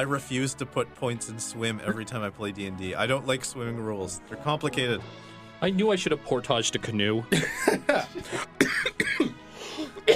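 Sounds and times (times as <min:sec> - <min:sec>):
speech: 0:00.0 - 0:09.3
laughter: 0:01.6 - 0:02.6, 0:07.3 - 0:08.6
person coughing harshly: 0:01.8 - 0:02.2, 0:07.3 - 0:10.1
gasping breaths between coughs: 0:09.4 - 0:10.0.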